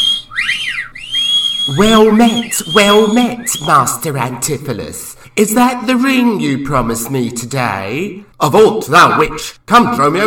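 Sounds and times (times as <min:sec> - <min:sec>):
wolf-whistles from a rowdy theatre audience at a stage play: 0:00.0 - 0:04.0
speech: 0:01.7 - 0:10.2.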